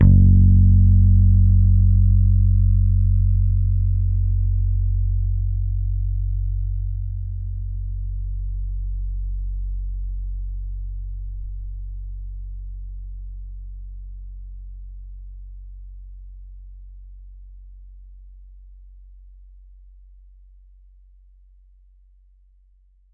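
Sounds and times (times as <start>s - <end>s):
bass guitar note picked on F sharp 1: 0.0s - 7.4s.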